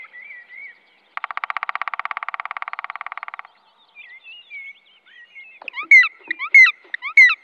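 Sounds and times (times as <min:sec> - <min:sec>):
other birds singing whistled phrases: 0:00.0 - 0:07.4
black woodpecker drumming: 0:01.1 - 0:03.8, 0:05.6 - 0:07.4.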